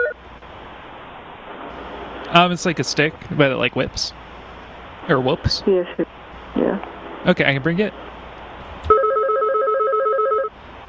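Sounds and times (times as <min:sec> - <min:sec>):
speech: 0:02.3 - 0:04.2, 0:05.1 - 0:08.1
telephone bell ringing with two alternating electronic tones: 0:08.9 - 0:10.5.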